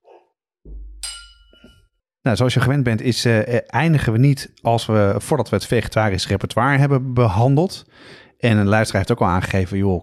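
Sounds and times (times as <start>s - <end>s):
glasses clinking together in a toast: 1.0s - 1.9s
speech: 2.2s - 10.0s.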